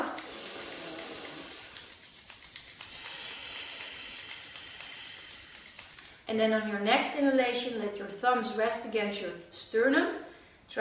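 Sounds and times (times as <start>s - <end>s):
hands rubbing together energetically during a guided breathing exercise: 0.0s - 6.3s
speech: 6.3s - 10.7s.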